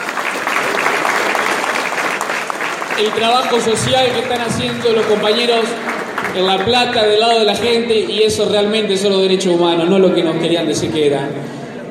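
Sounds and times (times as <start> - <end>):
audience applause: 0.0 - 7.6
speech: 3.0 - 11.6.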